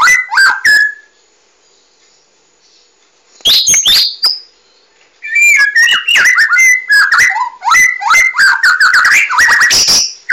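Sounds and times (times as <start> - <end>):
Oriental magpie-robin singing: 0.0 - 1.2, 1.8 - 10.3.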